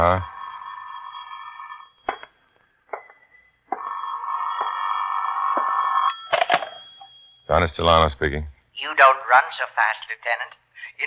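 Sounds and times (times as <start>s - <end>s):
speech: 0.0s - 0.3s, 7.5s - 11.0s
telephone ringing: 0.0s - 7.6s.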